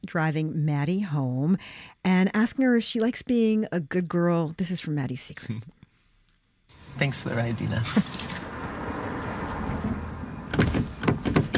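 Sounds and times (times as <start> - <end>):
speech: 0.0 - 5.8, 7.0 - 8.4
low engine hum: 6.7 - 11.5
stuck car door handle rattling and clunking as someone tugs at it: 10.5 - 11.5.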